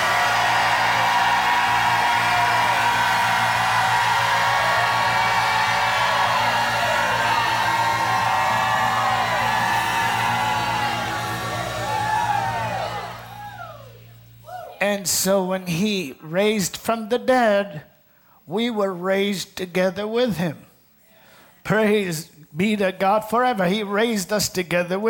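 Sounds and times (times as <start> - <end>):
large audience shouting and whooping: 0.0 - 14.8
speech: 15.0 - 17.9, 18.5 - 20.7, 21.6 - 25.0.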